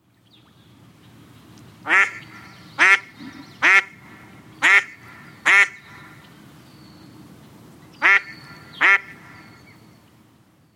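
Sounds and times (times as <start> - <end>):
female Anas platyrhynchos calling: 1.9 - 6.2, 8.0 - 9.5.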